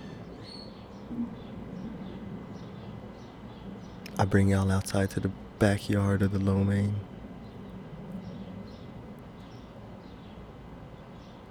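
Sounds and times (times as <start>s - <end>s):
faint birds chirping in a backyard: 0.0s - 11.4s
steady low outdoor rumble: 1.2s - 9.4s
speech: 4.2s - 7.1s.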